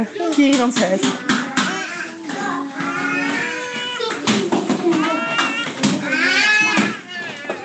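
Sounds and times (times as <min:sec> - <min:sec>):
speech: 0:00.0 - 0:01.3
young children chattering and squealing while playing board games at a home party: 0:01.1 - 0:07.6.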